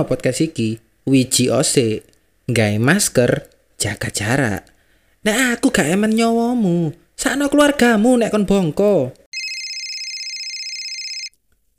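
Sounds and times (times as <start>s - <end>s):
speech: 0.0s - 9.2s
telephone ringing with high-pitched electronic trill: 9.3s - 11.3s.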